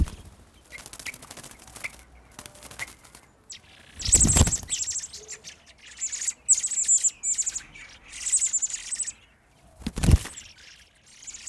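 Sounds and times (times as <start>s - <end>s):
mother blackbird wing flaps: 0.0s - 3.3s, 4.0s - 4.8s, 9.8s - 10.5s
baby blackbirds chirping in a nest: 0.0s - 11.4s.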